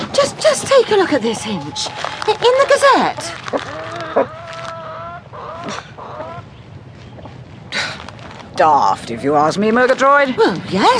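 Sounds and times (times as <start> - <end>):
barnyard background: 0.0 - 10.9
hens clucking and warbling in a hen house: 0.2 - 6.7
speech: 0.7 - 4.4, 8.6 - 10.9
hens squawking: 1.4 - 6.5.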